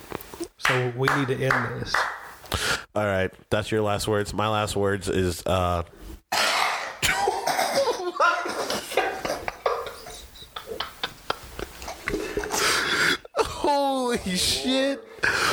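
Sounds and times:
speech: 0.7 - 2.2, 2.9 - 6.5, 14.2 - 15.5
person coughing harshly with throaty rasping and hacking: 6.3 - 8.6
laughter: 7.0 - 14.4.

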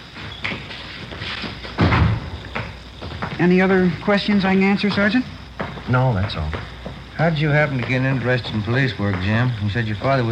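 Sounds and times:
door swinging and shutting with a solid low thud: 1.8 - 3.4
speech: 3.4 - 10.3.

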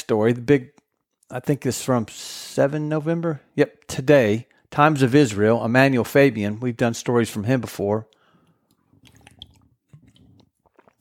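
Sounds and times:
speech: 0.1 - 8.2
lip smacks and mouth clicks: 8.1 - 10.9
person gulping and swallowing water: 8.8 - 10.9.

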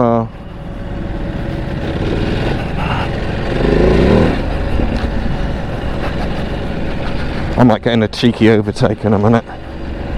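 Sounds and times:
car engine cooling fans whirring: 0.0 - 10.1
speech: 7.6 - 9.7.

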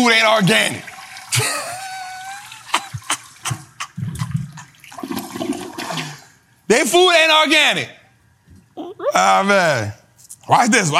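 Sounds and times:
speech: 0.0 - 1.6, 6.7 - 8.0, 8.8 - 10.9
toilet flushing: 0.0 - 6.4.

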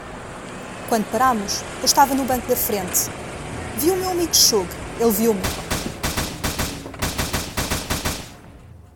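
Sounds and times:
speech: 0.9 - 3.2, 3.8 - 5.7
gunshots fired from a car: 5.4 - 8.4.

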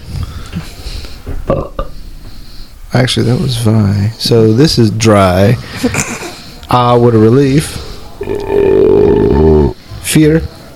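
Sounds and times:
low hum: 0.0 - 10.7
belch: 1.4 - 2.0, 8.2 - 9.8
speech: 3.0 - 8.4, 10.1 - 10.6
laughter: 5.6 - 6.6.

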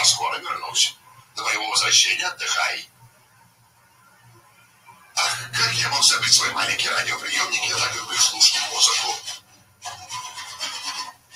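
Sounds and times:
speech: 0.1 - 2.9, 5.2 - 9.4
hand saw sawing wood: 8.9 - 11.3.

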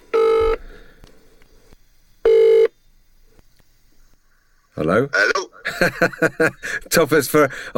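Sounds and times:
ringback tones from an outgoing phone call: 0.2 - 0.6, 2.3 - 2.7
speech: 4.8 - 7.7
laughter: 5.5 - 6.9.

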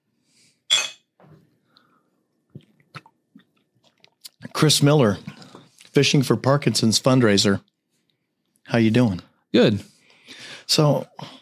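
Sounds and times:
small mouth clicks and smacks: 2.5 - 4.5
quiet gulp: 2.5 - 5.9
speech: 4.6 - 5.4, 6.0 - 7.7, 8.7 - 11.3.

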